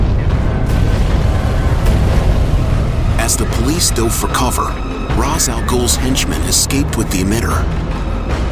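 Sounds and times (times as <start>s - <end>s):
steam explosions from water pipes bursting: 0.0s - 6.6s
speech: 3.3s - 8.4s.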